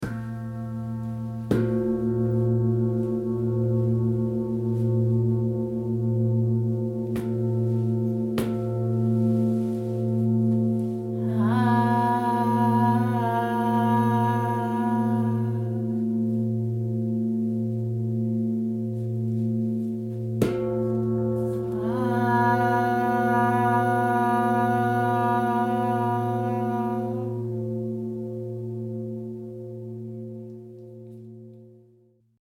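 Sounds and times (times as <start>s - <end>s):
singing bowl and tingsha harmony: 0.0s - 32.3s.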